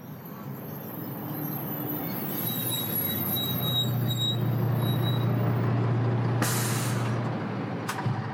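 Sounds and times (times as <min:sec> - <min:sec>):
truck brakes squealing in a thin high whine: 0:00.0 - 0:08.3
truck rumbling on a road: 0:00.0 - 0:08.3
truck air-brake hiss: 0:06.4 - 0:07.2.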